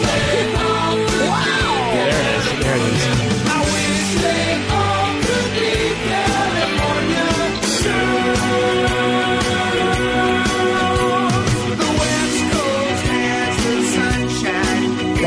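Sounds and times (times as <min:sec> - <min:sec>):
dense driving rock band playing: 0:00.0 - 0:15.2
singer's loud sustained scream swooping in pitch: 0:01.1 - 0:03.2.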